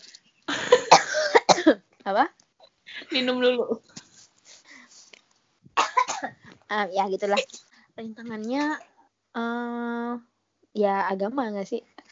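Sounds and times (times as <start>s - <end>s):
person coughing: 0.5s - 1.8s, 5.8s - 6.4s
speech: 1.7s - 2.4s, 3.1s - 3.9s, 6.7s - 11.9s.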